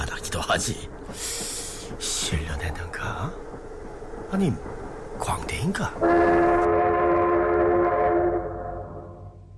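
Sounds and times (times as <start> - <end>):
low rumble of rail noise: 0.0 - 9.5
speech: 0.3 - 1.3, 1.9 - 3.7, 4.3 - 6.8
train horn blast as the train arrives at Beidaihe station: 6.0 - 9.4.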